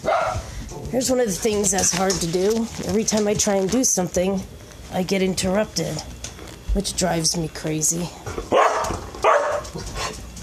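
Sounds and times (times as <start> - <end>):
pet dog barking: 0.0 - 0.5, 8.5 - 9.8
speech: 0.9 - 6.2, 6.8 - 9.0
pet dog yipping: 8.5 - 9.6.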